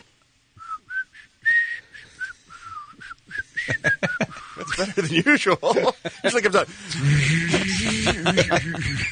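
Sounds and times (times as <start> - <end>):
person whistling a short bouncy tune: 0.6 - 4.8
laughter: 3.6 - 9.1
speech: 4.8 - 7.6, 8.2 - 9.1.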